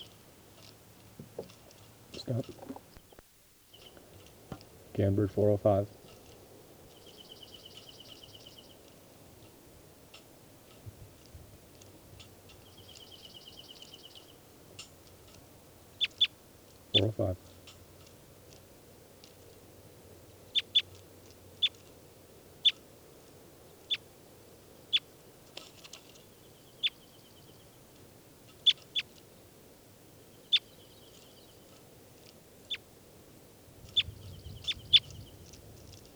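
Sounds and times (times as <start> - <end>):
small bird calling while being handled: 0.0 - 9.6, 11.8 - 29.4, 30.0 - 33.1, 33.7 - 36.1
faint hiss: 0.0 - 36.1
dull low thump: 1.2 - 1.6
speech: 2.3 - 2.6, 5.0 - 6.0.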